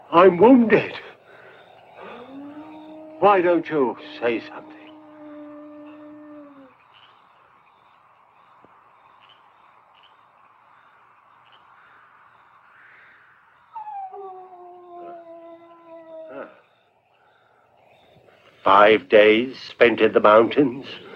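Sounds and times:
steady hiss: 0:00.0 - 0:21.1
speech: 0:00.1 - 0:01.1, 0:03.2 - 0:04.8, 0:18.7 - 0:21.1
dog howling: 0:00.1 - 0:07.0, 0:13.7 - 0:16.7.

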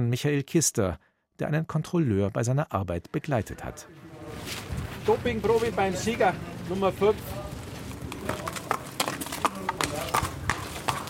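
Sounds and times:
speech: 0:00.0 - 0:07.4, 0:08.3 - 0:08.6
trotting racehorse hooves at Straubing harness racing track: 0:04.6 - 0:11.0.

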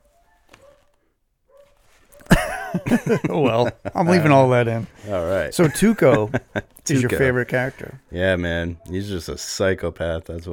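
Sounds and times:
dog barking: 0:00.0 - 0:02.4
laughter: 0:02.2 - 0:08.0
speech: 0:02.7 - 0:10.5.

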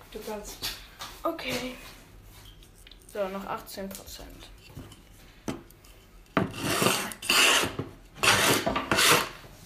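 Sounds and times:
speech: 0:01.4 - 0:01.9, 0:03.1 - 0:04.5
coarse 80-grit sandpaper rasping against wood: 0:06.5 - 0:09.3.

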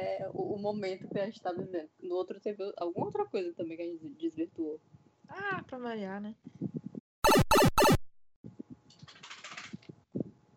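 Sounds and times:
speech: 0:00.0 - 0:06.7
dog shaking its head: 0:09.1 - 0:09.8.

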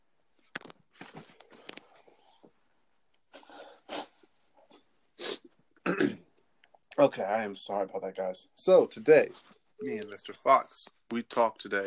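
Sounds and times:
person blowing nose: 0:03.4 - 0:04.3, 0:05.2 - 0:05.6
speech: 0:05.9 - 0:06.2, 0:07.0 - 0:11.8.

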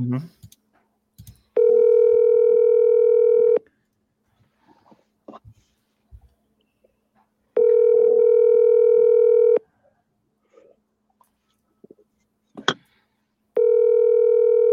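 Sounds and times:
faint small noises: 0:00.0 - 0:14.7
ringback tone of an unanswered phone call: 0:01.6 - 0:03.6, 0:07.6 - 0:09.6, 0:13.6 - 0:14.7.

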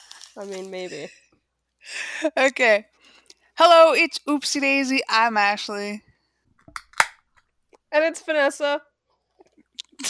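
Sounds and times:
speech: 0:00.4 - 0:01.2, 0:01.9 - 0:03.0, 0:03.6 - 0:06.1, 0:07.9 - 0:08.9
beer can cracking open with pop and fizzing hiss: 0:06.7 - 0:07.3.

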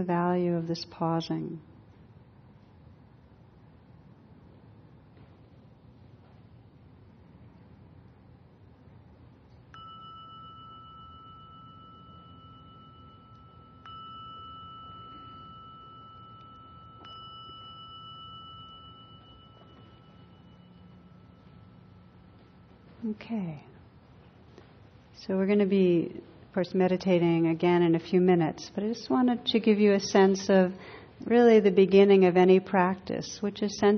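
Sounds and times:
speech: 0:00.0 - 0:01.7, 0:23.1 - 0:23.7, 0:25.2 - 0:33.9
meditation gong struck and ringing out: 0:09.8 - 0:23.1.

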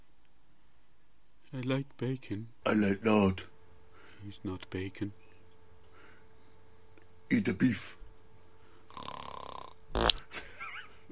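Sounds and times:
speech: 0:01.5 - 0:03.5, 0:04.2 - 0:05.2, 0:07.3 - 0:08.0
faint breathy sounds: 0:03.8 - 0:04.3, 0:05.2 - 0:06.8, 0:08.5 - 0:09.0
loud rattling snore ending in a snorting gasp: 0:08.9 - 0:10.1.

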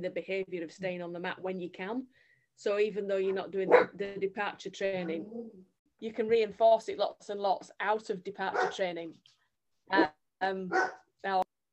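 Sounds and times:
speech: 0:00.0 - 0:11.4
dog barking: 0:03.7 - 0:04.0, 0:08.5 - 0:08.8, 0:10.7 - 0:11.0.

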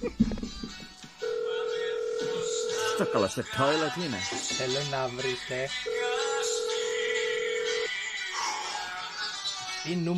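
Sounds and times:
speech: 0:00.0 - 0:00.2, 0:03.1 - 0:06.0, 0:09.8 - 0:10.1
telephone ringing with a steady electronic tone: 0:01.2 - 0:04.3, 0:05.8 - 0:08.8.

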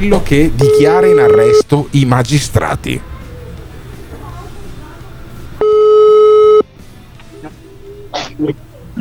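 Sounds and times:
speech: 0:00.0 - 0:03.1, 0:08.4 - 0:08.6
telephone ringing tone of an outgoing call: 0:00.6 - 0:01.6, 0:05.6 - 0:06.7.

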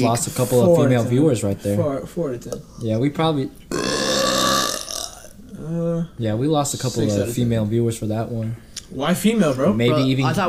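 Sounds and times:
speech: 0:00.0 - 0:03.9, 0:05.7 - 0:10.4
long deep burp into the microphone: 0:03.7 - 0:05.4.

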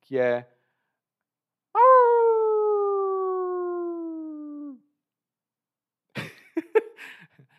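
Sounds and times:
speech: 0:00.1 - 0:00.5
person imitating a dog howl: 0:01.8 - 0:04.8.

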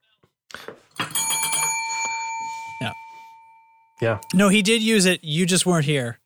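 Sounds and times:
bell banged and ringing with a bright metallic tone: 0:01.0 - 0:05.0
speech: 0:02.8 - 0:03.0, 0:04.0 - 0:06.2.

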